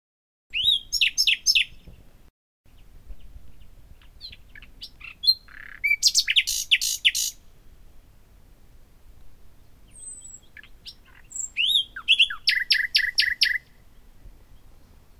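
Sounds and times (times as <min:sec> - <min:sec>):
common nightingale Luscinia megarhynchos singing: 0:00.5 - 0:02.0, 0:02.7 - 0:07.5, 0:09.5 - 0:15.1.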